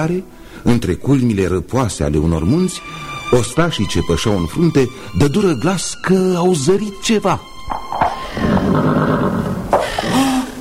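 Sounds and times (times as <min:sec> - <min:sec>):
speech: 0:00.0 - 0:08.9
horse neighing and snorting: 0:08.2 - 0:10.6.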